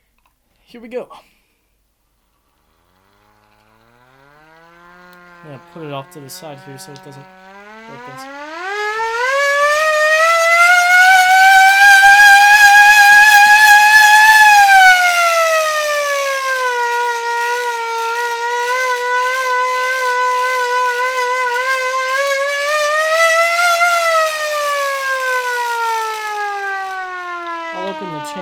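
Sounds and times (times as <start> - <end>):
speech: 0.7 - 1.4, 5.4 - 8.4
hand-cranked mechanical siren wailing: 2.4 - 28.4.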